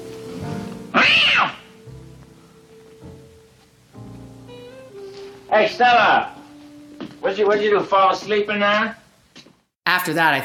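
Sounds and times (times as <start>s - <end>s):
cat meowing: 0.9s - 1.8s
speech: 5.5s - 6.4s, 7.2s - 9.0s, 9.9s - 10.4s.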